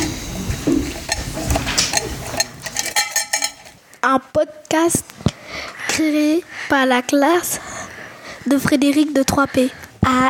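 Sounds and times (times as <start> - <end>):
homemade can shaker with balls inside rattling: 0.0 - 3.8
speech: 4.0 - 5.2, 6.0 - 7.7, 8.4 - 10.2.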